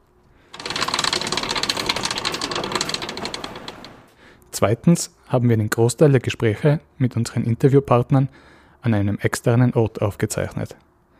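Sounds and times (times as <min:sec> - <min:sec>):
crank on mobile rolling shelving in an archive turning: 0:00.5 - 0:04.1
speech: 0:04.6 - 0:10.9.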